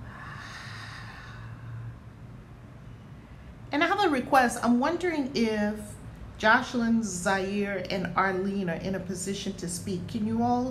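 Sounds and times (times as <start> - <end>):
long deep breath drawn slowly: 0.0 - 2.2
speech: 3.7 - 10.6.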